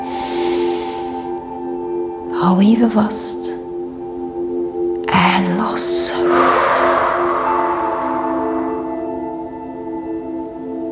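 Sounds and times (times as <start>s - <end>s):
person breathing in deeply through the nose: 0.0s - 1.6s, 6.2s - 9.6s
soft sustained musical tones: 0.0s - 10.9s
speech: 2.4s - 3.4s, 5.4s - 6.7s.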